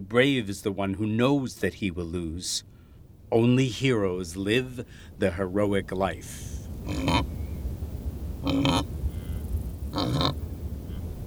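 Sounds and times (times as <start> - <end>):
low steady rumble: 0.0 - 11.2
speech: 0.1 - 2.7, 3.3 - 7.4, 8.4 - 9.0
wildebeest grunting while grazing: 6.7 - 7.5, 8.4 - 11.0.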